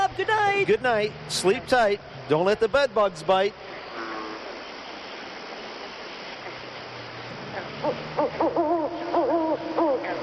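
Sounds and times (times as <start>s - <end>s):
speech: 0.2s - 3.8s
owl hooting with wavering calls: 7.8s - 10.2s.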